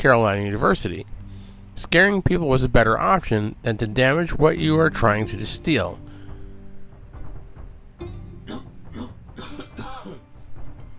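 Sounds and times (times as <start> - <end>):
speech: 0.0 - 1.2, 1.8 - 6.2
steady low hum: 0.0 - 10.9
rough throaty coughs: 8.5 - 10.2.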